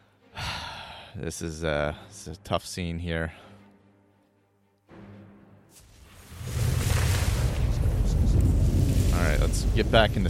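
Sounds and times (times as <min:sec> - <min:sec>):
speech: 0:01.2 - 0:03.5, 0:09.5 - 0:10.2
fire burning in a video game: 0:05.9 - 0:10.2.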